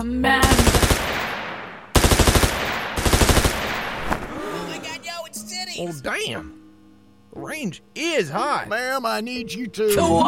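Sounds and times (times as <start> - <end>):
speech: 0.0 - 0.7, 5.8 - 6.6, 7.3 - 10.2
assault rifle automatic fire in a video game: 0.4 - 4.4.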